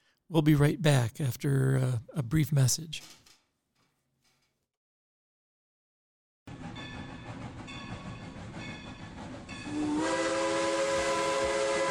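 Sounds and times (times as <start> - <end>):
speech: 0.3 - 3.2
steam locomotive rumbling and clattering along the rails with railcars rolling: 6.5 - 11.8
loud sustained steam locomotive whistle: 9.6 - 11.8.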